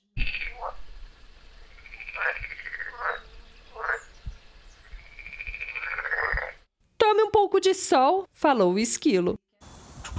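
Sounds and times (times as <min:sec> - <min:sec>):
frog croaking with loud raspy calls: 0:00.1 - 0:00.9, 0:01.6 - 0:04.1, 0:04.8 - 0:06.7
speech: 0:07.7 - 0:09.4.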